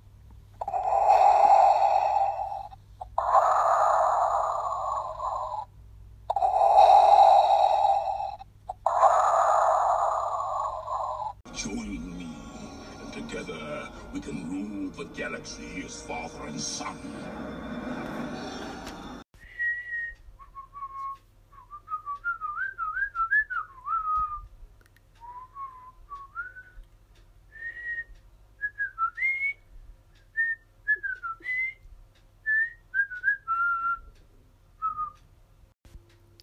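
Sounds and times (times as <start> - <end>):
low steady hum: 0.0 - 36.4
speech: 15.4 - 17.5
person whistling a melodic tune: 19.4 - 24.5, 25.2 - 26.8, 27.5 - 29.7, 30.3 - 31.8, 32.4 - 34.1.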